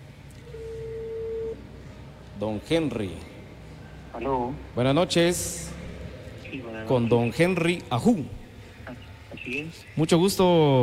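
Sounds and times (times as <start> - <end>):
telephone ringback tone: 0.4 - 1.6
speech: 2.4 - 3.3, 4.2 - 5.8, 6.5 - 10.8.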